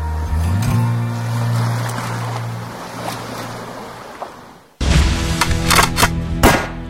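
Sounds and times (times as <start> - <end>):
low engine hum: 0.0 - 4.5
surf: 0.0 - 5.6
gunshots at a shooting range in Dąbrówka near Luzino Poland: 5.4 - 6.8.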